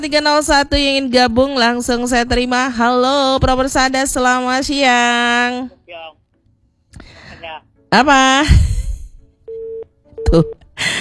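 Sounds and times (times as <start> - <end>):
speech: 0.0 - 6.2, 7.5 - 8.7, 10.2 - 11.0
telephone busy tone after the other party hung up: 9.5 - 10.6.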